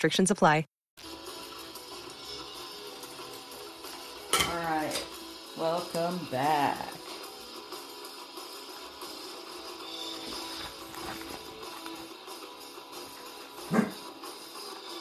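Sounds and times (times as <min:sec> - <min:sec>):
speech: 0:00.0 - 0:01.2, 0:05.6 - 0:07.0
dog barking: 0:13.7 - 0:14.0.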